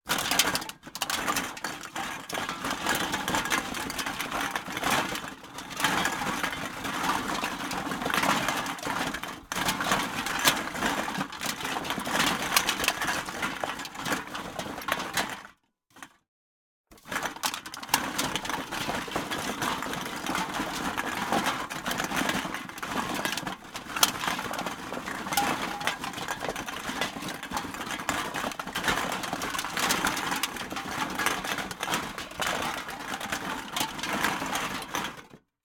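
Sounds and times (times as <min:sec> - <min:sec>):
rummaging aluminum cans: 0:00.1 - 0:16.1, 0:17.0 - 0:35.4.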